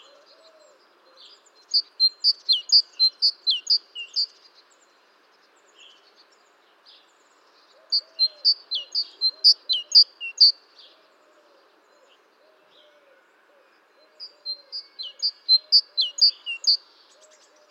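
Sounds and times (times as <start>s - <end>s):
great tit calls: 1.7s - 4.4s, 7.8s - 10.6s, 14.2s - 17.6s.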